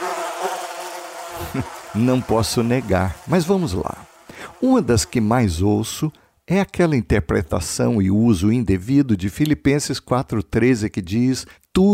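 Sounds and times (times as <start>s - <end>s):
flies buzzing in a dense drone: 0.0s - 5.7s
speech: 1.5s - 11.9s.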